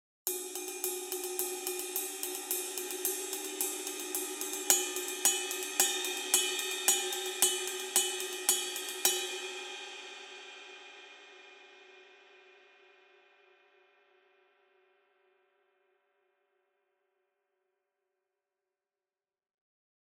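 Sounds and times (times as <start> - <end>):
Custom Ride 20 medium ride cymbal: 0.3 - 11.4.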